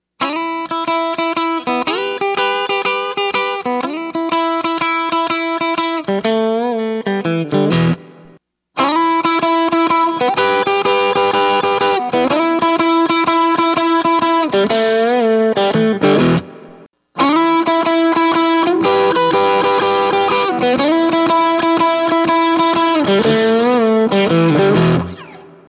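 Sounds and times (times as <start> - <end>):
Strat electric guitar through TS808 clone overdrive pedal: 0.2 - 25.6.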